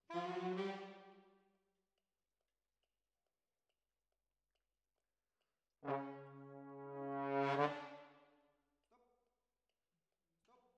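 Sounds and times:
jazz trombones: 5.8 - 8.2.

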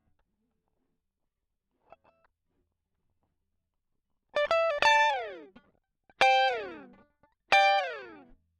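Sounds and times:
solo guitar line: 4.4 - 5.6, 6.2 - 8.4.

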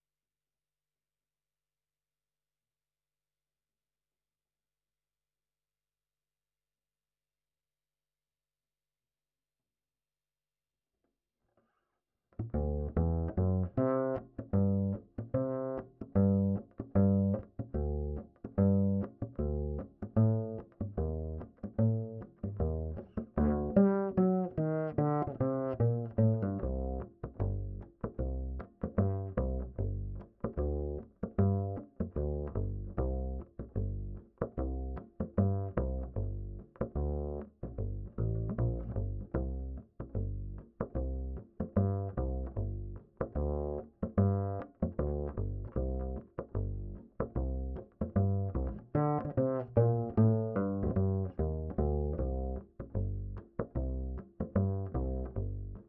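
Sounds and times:
ragtime bass line: 12.4 - 55.8.

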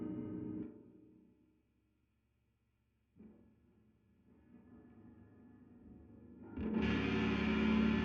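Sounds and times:
guitar: 0.0 - 0.9, 6.5 - 8.0.

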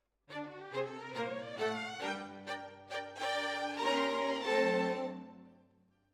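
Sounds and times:
violins playing: 0.3 - 5.5.

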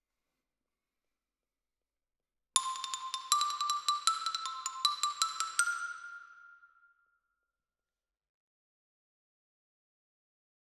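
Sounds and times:
xylophone: 2.6 - 6.4.

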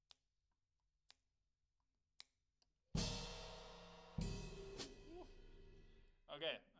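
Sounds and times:
snare drum recorded from the top: 3.0 - 5.3.

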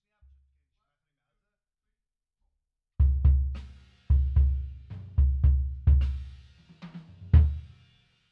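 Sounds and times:
bass drum: 3.0 - 7.7.

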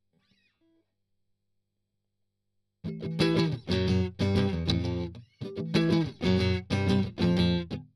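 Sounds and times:
strummed octaves: 2.9 - 7.9.

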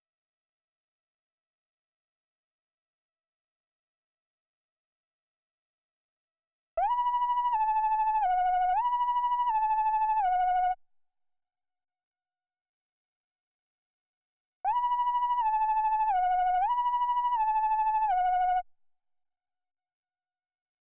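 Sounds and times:
analogue synthesizer: 6.8 - 10.8, 14.8 - 18.6.

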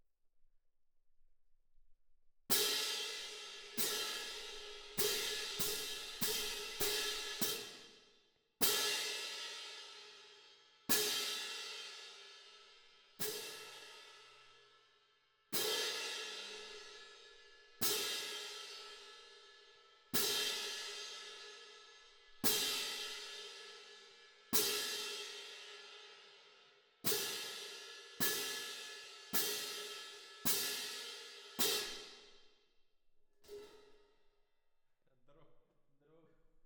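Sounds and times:
cymbal: 2.5 - 14.8, 15.5 - 32.4.

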